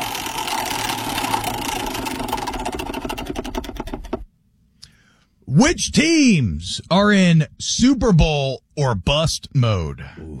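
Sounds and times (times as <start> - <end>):
prize wheel spinning with clicker ticking: 0.0 - 4.3
speech: 5.6 - 10.3.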